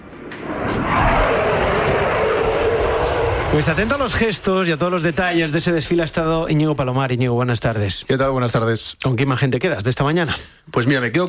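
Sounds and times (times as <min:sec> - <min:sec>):
Eurofighter combat jets of the Spanish military roaring overhead during a parade: 0:00.0 - 0:07.7
speech: 0:03.5 - 0:11.2.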